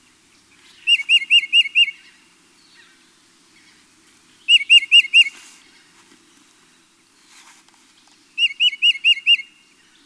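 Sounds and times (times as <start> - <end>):
titmouse song of clear whistled notes: 0.8 - 2.2, 4.5 - 5.4, 8.4 - 9.6.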